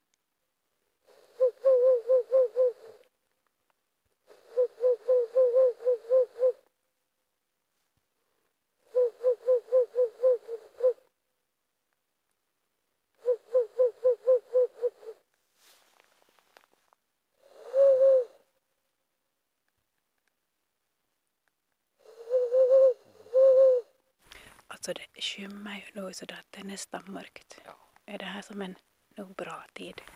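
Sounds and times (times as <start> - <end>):
Ural owl hooting in quick pulsing notes: 1.1 - 3.0, 4.3 - 6.7, 8.9 - 11.1, 13.2 - 15.2, 17.4 - 18.4, 22.0 - 24.0
speech: 24.9 - 30.1.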